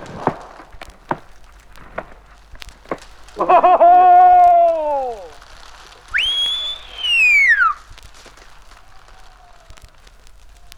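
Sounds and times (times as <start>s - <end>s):
laughter: 3.3s - 5.4s
drawn-out warning whistle blasts before explosion: 6.1s - 7.9s.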